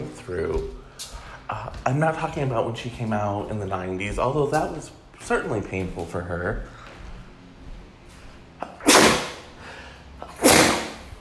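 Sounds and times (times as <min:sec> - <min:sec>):
speech: 0:00.2 - 0:06.8
loud sneezes: 0:08.6 - 0:09.5, 0:10.2 - 0:11.2.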